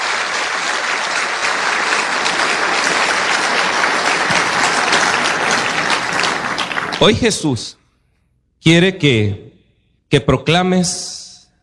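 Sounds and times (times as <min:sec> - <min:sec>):
crowd applause: 0:00.0 - 0:07.4
speech: 0:07.0 - 0:07.8, 0:08.6 - 0:09.5, 0:10.1 - 0:11.2.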